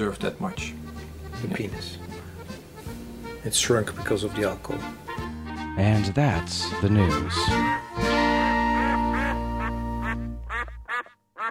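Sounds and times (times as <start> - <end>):
speech: 0.0 - 2.1, 3.4 - 5.0, 5.8 - 8.1
duck quacking: 8.5 - 11.4.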